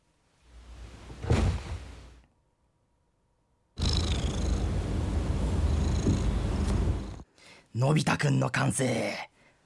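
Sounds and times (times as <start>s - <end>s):
cat purring: 3.8s - 7.2s
speech: 7.8s - 9.3s.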